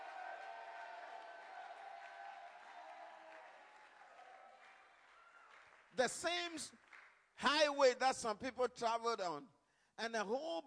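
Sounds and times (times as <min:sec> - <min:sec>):
congregation applause: 0:00.0 - 0:06.0
speech: 0:05.9 - 0:10.6.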